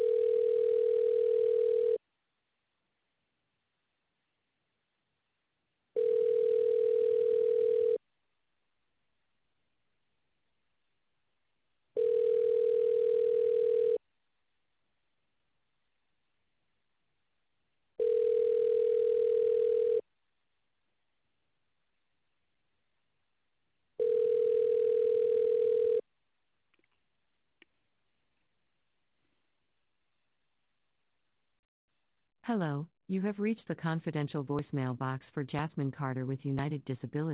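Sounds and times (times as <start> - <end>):
telephone ringback tone of a call being transferred: 0.0 - 2.0, 6.0 - 8.0, 12.0 - 14.0, 18.0 - 20.0, 24.0 - 26.0
speech: 32.5 - 37.3.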